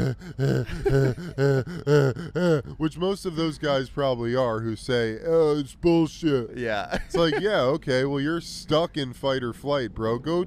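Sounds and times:
laughter: 0.0s - 2.7s, 6.9s - 7.8s
man's voice imitating shallow stressed breathing: 0.0s - 2.9s
speech: 0.1s - 10.4s.

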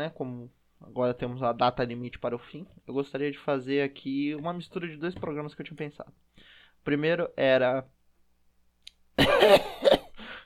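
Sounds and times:
speech: 0.0s - 8.0s, 9.2s - 10.0s
harsh raspy throat clearing: 9.2s - 10.2s.

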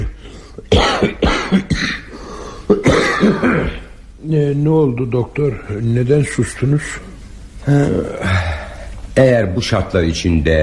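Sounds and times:
patient coughing on doctor's request: 0.0s - 2.1s, 2.7s - 3.9s
speech: 4.3s - 8.4s, 9.2s - 10.6s.

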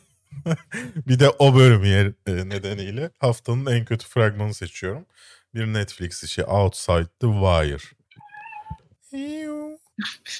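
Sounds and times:
laughter: 0.3s - 1.4s
speech: 0.4s - 8.0s, 9.1s - 10.3s
cat meowing: 8.2s - 8.8s.

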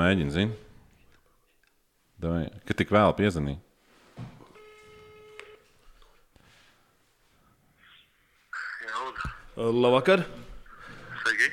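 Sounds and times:
speech: 0.0s - 0.6s, 2.2s - 3.6s, 9.6s - 10.4s, 11.2s - 11.5s
electronic phone ringing tone: 4.5s - 5.7s.

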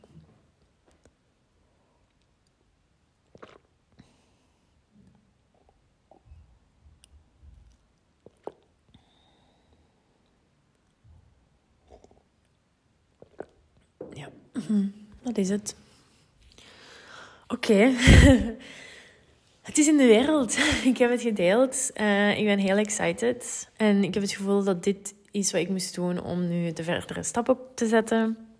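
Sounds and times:
person sipping tea: 1.8s - 10.4s, 11.7s - 14.1s
speech: 14.3s - 15.8s, 17.6s - 18.8s, 19.7s - 28.5s.

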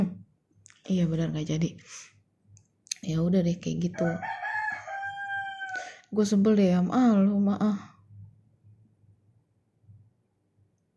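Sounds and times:
speech: 0.9s - 2.2s, 3.0s - 4.4s, 6.1s - 7.9s
rooster crowing: 4.0s - 6.0s.

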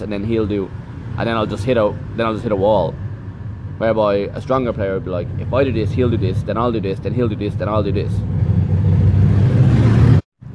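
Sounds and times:
speech: 0.0s - 3.0s, 3.8s - 8.5s
motorbike roaring past outside: 7.5s - 10.5s.

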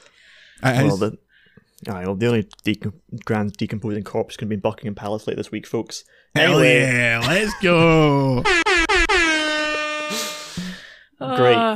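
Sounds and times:
speech: 0.6s - 1.2s, 1.8s - 8.8s
air horn blasts: 8.4s - 10.7s.

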